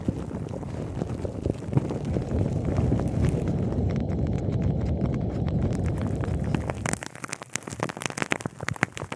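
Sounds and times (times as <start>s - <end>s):
ASMR foam and sponge rubbed over a microphone: 0.0s - 9.1s
wet clicks and taps: 3.8s - 9.1s.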